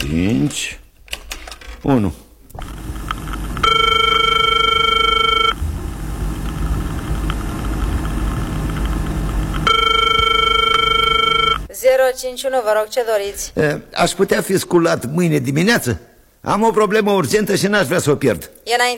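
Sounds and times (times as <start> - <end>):
speech: 0.1 - 0.8, 1.8 - 2.2, 12.1 - 18.9
telephone ringing: 2.6 - 5.6, 6.4 - 11.7
steady low rumbling background: 2.6 - 11.7.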